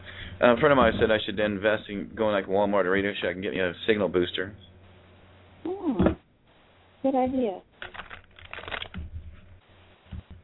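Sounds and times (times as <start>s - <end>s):
speech: 0.4s - 4.7s, 7.0s - 7.7s
deck of playing cards being shuffled: 7.8s - 9.4s.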